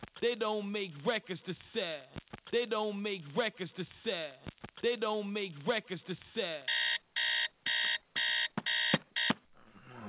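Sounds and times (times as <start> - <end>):
speech: 0.2 - 6.7
alarm clock beeping: 6.7 - 9.4.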